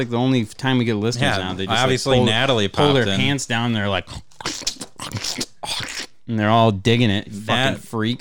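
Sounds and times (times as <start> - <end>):
speech: 0.0 - 8.1
crunchy chewing during a taste test: 4.0 - 6.2.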